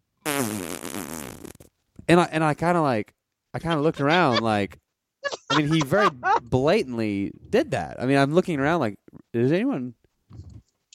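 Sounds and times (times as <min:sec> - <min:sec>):
person imitating a fart against a chair with a buzzing raspberry: 0:00.2 - 0:01.7
speech: 0:00.4 - 0:00.8, 0:02.1 - 0:10.4
laughter: 0:03.6 - 0:06.9.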